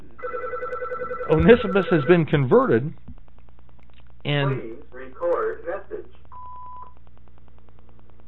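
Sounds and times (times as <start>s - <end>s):
telephone electronic tones: 0.2s - 2.2s
speech: 1.3s - 3.0s, 4.2s - 4.7s.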